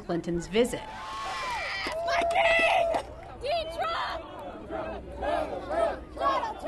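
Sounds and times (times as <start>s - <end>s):
speech: 0.1s - 1.2s
large crowd of supporters roaring and cheering: 0.8s - 6.6s
many voices shouting together: 1.1s - 6.6s
steady hubbub of babble: 1.3s - 6.6s.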